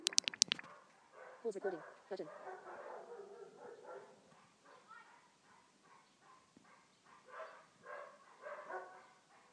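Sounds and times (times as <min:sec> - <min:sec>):
several dogs barking outside on a residential street in the morning: 0:00.7 - 0:09.5
speech: 0:01.4 - 0:02.8.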